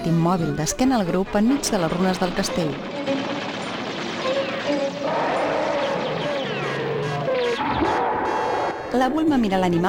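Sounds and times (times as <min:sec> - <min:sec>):
speech: 0:00.1 - 0:03.5, 0:08.9 - 0:09.8
small aircraft droning overhead: 0:02.7 - 0:07.8
bursts of rapid gunfire: 0:02.7 - 0:08.4.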